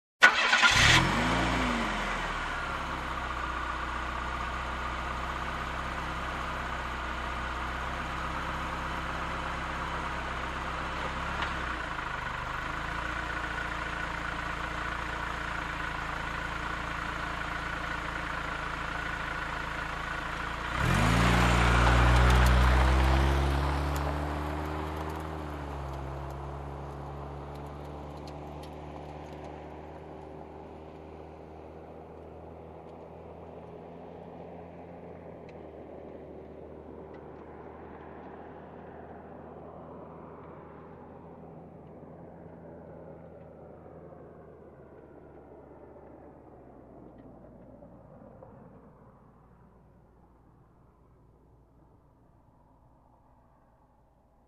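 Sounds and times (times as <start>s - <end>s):
car engine ignition: 0.2s - 42.2s
car driving off: 0.2s - 48.9s.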